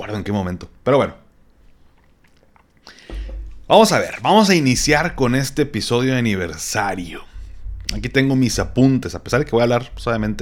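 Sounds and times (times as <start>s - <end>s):
speech: 0.0s - 1.2s, 3.7s - 7.3s, 7.9s - 10.3s
soft wet mouth noises: 1.6s - 3.7s
person sipping a drink: 1.7s - 3.6s
person gulping a drink: 1.8s - 3.7s.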